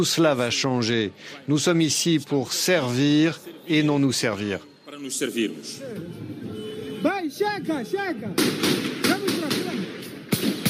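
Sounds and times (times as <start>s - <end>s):
speech: 0.0s - 9.8s
voices talking and calling: 0.0s - 10.3s
street noise in a city centre: 0.0s - 10.6s
gunfire cracks and bursts in a city centre: 8.4s - 10.6s.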